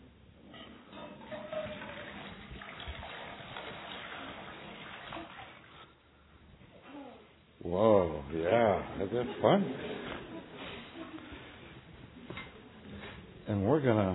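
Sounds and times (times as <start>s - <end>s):
running water with splashing hiss: 0.9s - 6.0s
speech: 7.6s - 10.1s, 13.5s - 14.1s.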